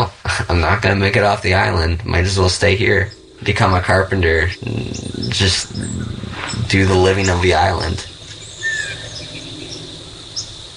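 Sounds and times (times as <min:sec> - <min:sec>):
steady hum of insects: 0:00.0 - 0:10.7
speech: 0:00.5 - 0:08.1
northern waterthrush chip calls: 0:02.4 - 0:10.7.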